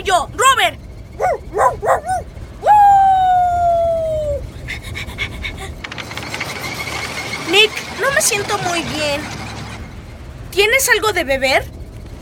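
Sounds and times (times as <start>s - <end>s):
speech: 0.0s - 2.2s, 8.0s - 9.4s, 10.6s - 11.7s
long drawn-out high vocal tone: 1.2s - 4.9s
person panting like an excited dog: 4.6s - 5.8s.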